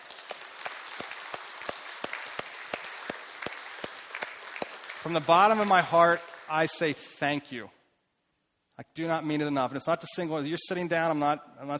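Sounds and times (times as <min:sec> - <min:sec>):
audience applauding: 0:00.0 - 0:06.8
speech: 0:05.0 - 0:07.8, 0:08.8 - 0:11.7.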